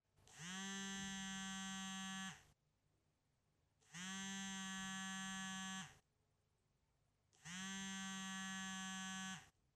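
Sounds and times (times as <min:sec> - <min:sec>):
phone vibrating: 0:00.4 - 0:02.4, 0:03.9 - 0:06.0, 0:07.5 - 0:09.5.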